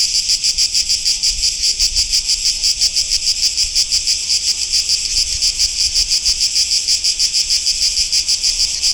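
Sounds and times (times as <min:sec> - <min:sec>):
cicada: 0:00.0 - 0:08.9.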